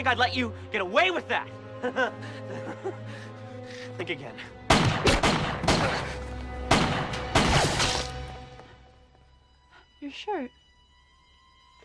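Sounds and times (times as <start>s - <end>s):
speech: 0.0s - 3.3s, 4.0s - 6.2s, 10.0s - 10.6s
laughter: 1.7s - 3.5s
gunshots from a gun fired at random in a TV drama scene: 4.7s - 6.1s, 6.7s - 8.2s.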